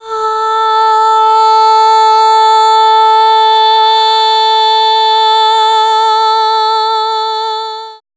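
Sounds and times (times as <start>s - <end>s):
vocal singing ah in F minor: 0.0s - 8.1s.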